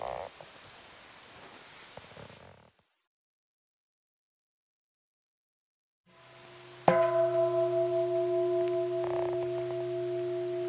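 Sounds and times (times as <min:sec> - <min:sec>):
meditation bell ringing in a quiet room: 0:06.8 - 0:10.6.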